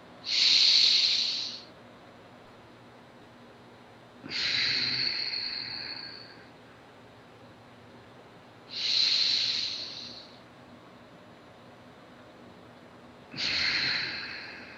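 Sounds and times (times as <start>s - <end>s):
slow deep belly breaths: 0.3s - 1.7s, 4.2s - 6.6s, 8.7s - 10.5s, 13.3s - 14.7s.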